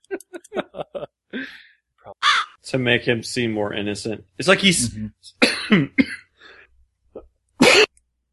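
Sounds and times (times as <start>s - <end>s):
laughter: 0.0s - 1.5s
speech: 2.7s - 6.0s
harsh coughs: 5.4s - 6.3s, 7.6s - 7.9s.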